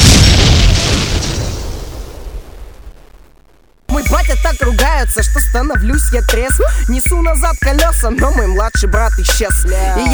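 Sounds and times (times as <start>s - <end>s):
loud explosion: 0.0s - 3.9s
speech: 4.3s - 10.1s.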